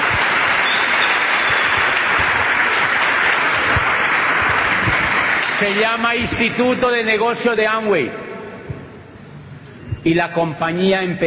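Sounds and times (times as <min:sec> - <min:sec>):
sustained applause from a large audience: 0:00.0 - 0:06.6
speech: 0:05.6 - 0:08.3, 0:10.0 - 0:11.2.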